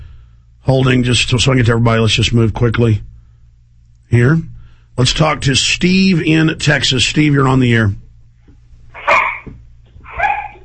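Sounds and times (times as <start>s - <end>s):
low steady hum: 0.0s - 10.6s
speech: 0.7s - 3.1s, 4.1s - 8.0s
dogs barking in the background: 8.9s - 10.6s.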